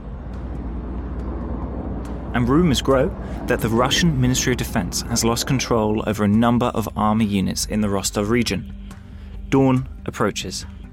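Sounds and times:
military planes roaring in the sky over Rostov: 0.0 - 7.4
speech: 2.3 - 8.8, 9.5 - 10.8.

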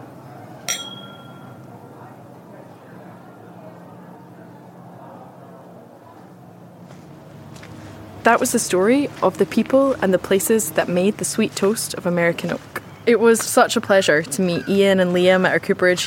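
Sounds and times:
low murmur: 0.0 - 16.0
glasses clinking in a toast: 0.7 - 1.6
speech: 8.2 - 16.0.

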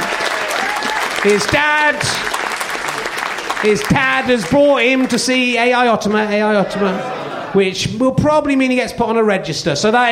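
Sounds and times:
audience applause at a live comedy show: 0.0 - 5.9
laughter: 0.0 - 7.8
speech: 1.2 - 2.4, 3.6 - 10.1.

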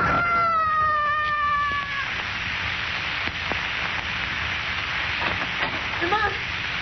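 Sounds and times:
man screaming as he falls 26 stories: 0.0 - 2.2
rushing hiss: 0.0 - 6.7
faint clicks and thumps: 3.2 - 6.4.

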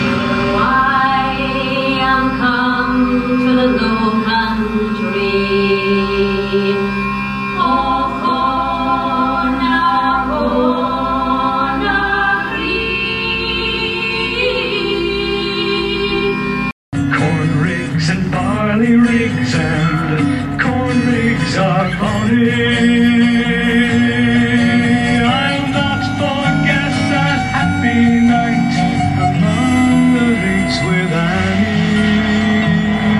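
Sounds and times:
folk song from a film soundtrack with melodic instruments and sung lines: 0.2 - 33.1.

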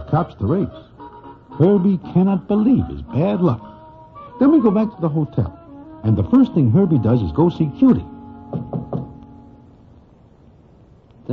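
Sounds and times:
speech: 0.1 - 0.9, 1.6 - 3.7, 4.4 - 8.1
knocks on a wooden hotel room door: 8.5 - 9.2.

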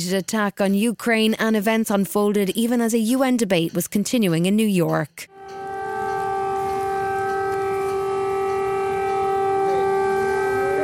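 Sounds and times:
speech: 0.0 - 5.3
air raid siren wailing: 5.3 - 10.8.

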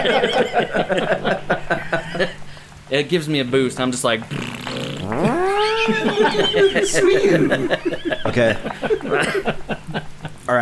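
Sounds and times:
speech: 0.0 - 1.5, 2.2 - 4.5, 5.9 - 10.6
laughter: 0.0 - 2.4, 5.0 - 10.6
wet buzzing mouth raspberry imitating a fart: 4.3 - 6.4.

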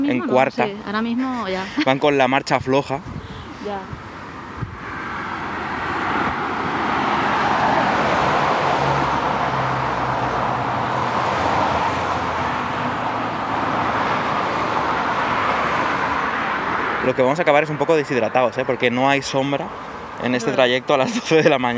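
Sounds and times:
speech: 0.0 - 4.0, 17.1 - 21.7
cars passing on a road: 0.0 - 21.7
laughter: 1.2 - 2.2, 20.4 - 21.7
wind buffeting on the microphone: 2.4 - 8.4.

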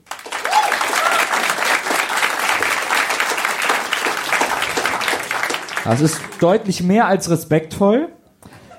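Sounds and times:
live audience applauding: 0.0 - 6.8
faint whoops from a live crowd: 0.3 - 1.6
speech: 5.8 - 8.2.

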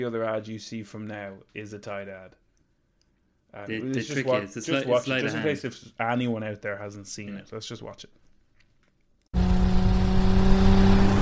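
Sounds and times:
speech: 0.0 - 2.4, 3.5 - 8.2
car engine roaring: 9.4 - 11.2.

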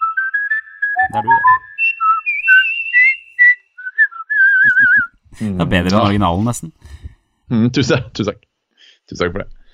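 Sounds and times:
person whistling a melodic tune: 0.0 - 5.2
speech: 1.0 - 1.7, 5.4 - 8.4, 9.1 - 9.6.

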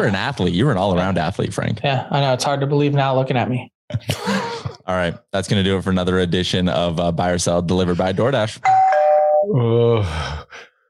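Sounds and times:
speech: 0.0 - 10.7
voice imitating a doorbell ding-dong chime: 8.6 - 9.7.

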